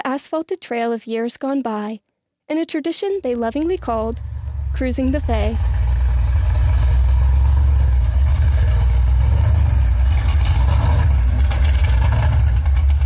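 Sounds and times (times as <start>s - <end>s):
speech: 0.2s - 5.8s
car engine idling and revving at a red light: 3.2s - 13.0s.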